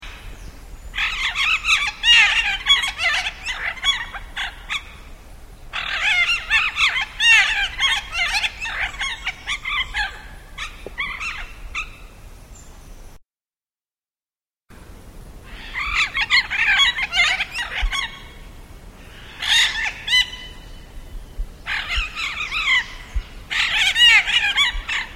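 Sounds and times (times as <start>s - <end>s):
yellow-collared macaw calling: 1.0s - 12.2s, 15.5s - 18.4s, 19.0s - 20.8s, 21.6s - 25.1s.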